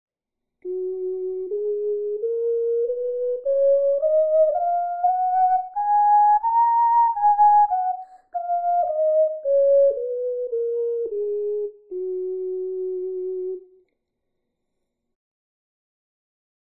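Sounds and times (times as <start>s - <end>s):
ocarina playing an F sharp scale: 0.7s - 13.8s.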